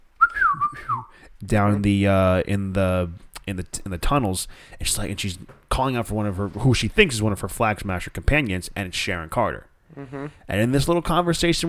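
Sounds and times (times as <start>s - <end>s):
person whistling a short signal: 0.2s - 1.1s
speech: 1.0s - 11.6s.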